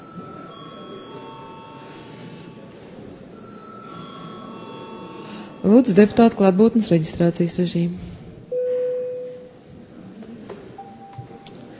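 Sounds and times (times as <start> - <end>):
electric bell ringing in a parliament chamber: 0.0 - 2.3, 3.3 - 6.0
speech: 5.6 - 8.1.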